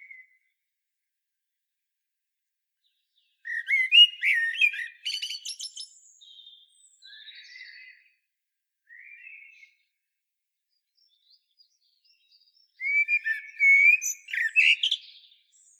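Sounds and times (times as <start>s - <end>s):
Common blackbird Turdus merula singing: 2.8s - 8.2s, 10.8s - 15.7s.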